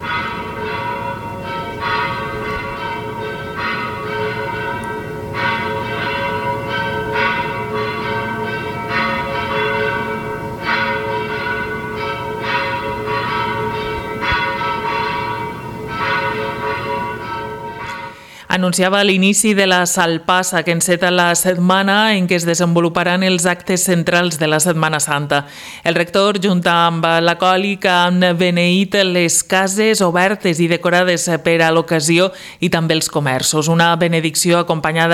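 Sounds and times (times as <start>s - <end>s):
church bells of the parish of l'Assumpció pealing from bell tower in Pego: 0.0s - 18.4s
speech: 18.6s - 35.1s.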